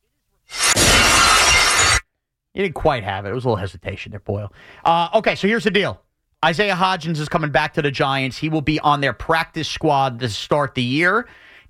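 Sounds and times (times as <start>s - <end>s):
breaking and scattering glass shards: 0.5s - 2.0s
glass shattering: 0.5s - 2.0s
speech: 2.6s - 11.6s.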